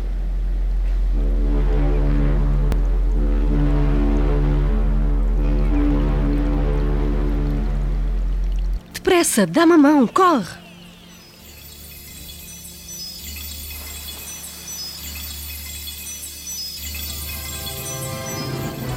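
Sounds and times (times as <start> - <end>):
faint watery wash: 0.0 - 18.9
large ship's engines droning: 0.0 - 18.9
speech: 9.2 - 10.6.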